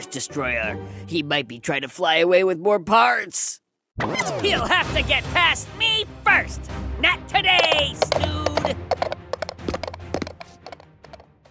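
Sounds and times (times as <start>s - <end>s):
speech: 0.0s - 8.9s
small hooves of a mechanical pygmy goat trotting on a hard surface: 7.4s - 11.5s.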